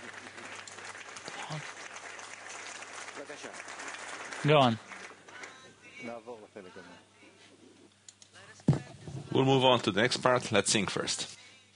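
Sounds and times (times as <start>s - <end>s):
live audience crowd applauding: 0.0s - 5.7s
speech: 1.5s - 1.8s, 3.2s - 4.9s, 6.0s - 7.1s, 9.4s - 11.4s.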